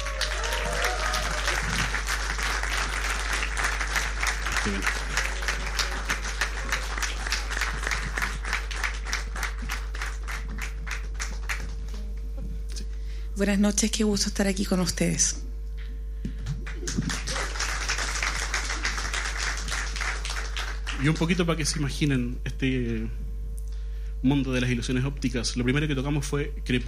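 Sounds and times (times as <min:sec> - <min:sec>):
audience applause: 0:00.0 - 0:12.1, 0:16.6 - 0:21.7
low steady hum: 0:00.0 - 0:26.8
speech: 0:04.6 - 0:05.0, 0:13.4 - 0:15.4, 0:21.0 - 0:23.2, 0:24.2 - 0:26.8.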